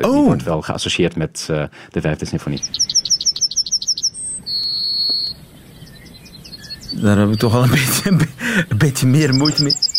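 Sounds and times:
speech: 0.0s - 3.0s, 7.0s - 9.8s
yellowhammer singing: 2.3s - 9.9s
faint bird calls: 2.4s - 9.9s
laughter: 7.5s - 9.7s.

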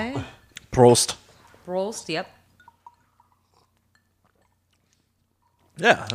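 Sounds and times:
soft liquid-like sounds: 0.5s - 5.8s
speech: 0.8s - 2.4s, 5.8s - 6.1s
glasses of tequila clinking in a toast: 2.4s - 5.8s.

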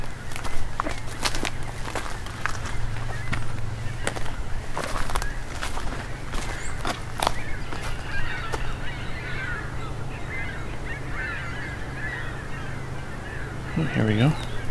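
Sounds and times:
flock of ring-billed gulls calling flying past: 0.0s - 14.6s
low constant rumble: 0.0s - 14.6s
sharp crunching footsteps: 0.0s - 14.6s
speech: 14.0s - 14.4s.

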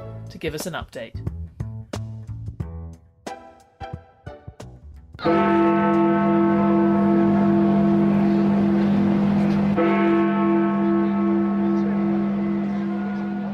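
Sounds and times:
speech: 0.3s - 1.3s, 5.2s - 6.0s
clock-tower bell tolling: 5.2s - 13.5s.

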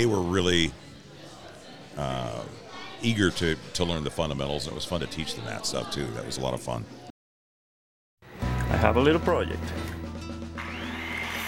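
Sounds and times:
speech: 0.0s - 0.8s, 2.0s - 7.0s, 8.7s - 9.9s
power tool whirring while making a light bat: 10.6s - 11.4s.

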